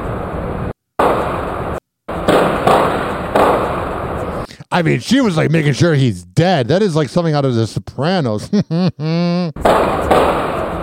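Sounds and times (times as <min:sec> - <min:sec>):
gunshots: 0:01.0 - 0:04.3, 0:09.6 - 0:10.8
speech: 0:04.8 - 0:10.2
laughter: 0:08.2 - 0:09.6.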